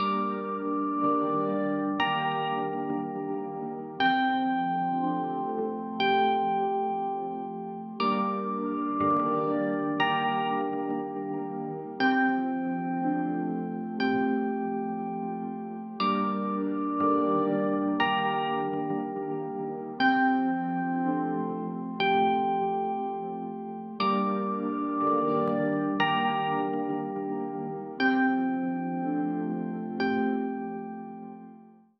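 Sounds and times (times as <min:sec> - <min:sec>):
ambient music: 0:00.0 - 0:31.7.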